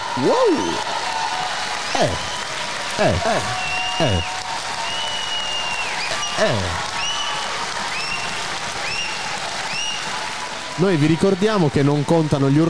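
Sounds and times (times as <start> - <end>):
crowd applauding: 0.0 - 12.6
brief vocal exclamation: 0.1 - 0.8, 1.9 - 2.3, 3.0 - 4.3, 6.1 - 6.8
speech: 0.2 - 1.1, 1.9 - 2.4, 3.0 - 4.4, 6.4 - 6.9, 10.8 - 12.6
shrill whistles: 3.5 - 10.2.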